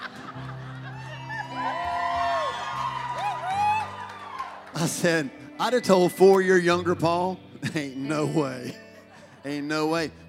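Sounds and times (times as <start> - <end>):
laughter: 0.0 - 2.0, 7.6 - 10.1
audience members yelling and whooping: 0.1 - 5.0
speech: 4.8 - 8.8, 9.4 - 10.2.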